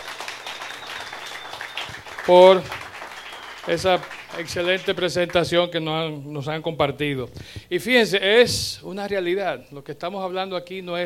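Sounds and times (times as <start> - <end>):
audience applauding: 0.0 - 5.4
speech: 2.3 - 2.8, 3.6 - 11.0.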